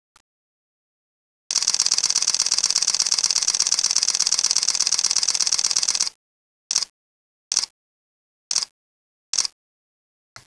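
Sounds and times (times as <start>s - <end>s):
Canon EOS-1D Mark II camera shutter in high-speed burst: 1.5s - 6.9s, 9.3s - 9.6s.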